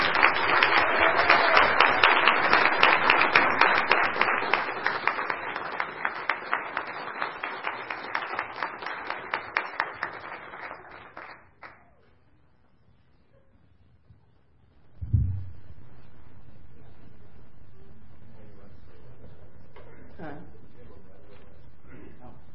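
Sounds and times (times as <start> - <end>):
audience applause welcoming a child: 0.0 - 11.8.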